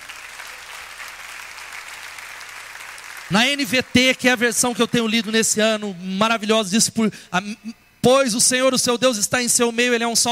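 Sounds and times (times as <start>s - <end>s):
audience applauding: 0.0s - 5.6s
speech: 3.3s - 10.3s.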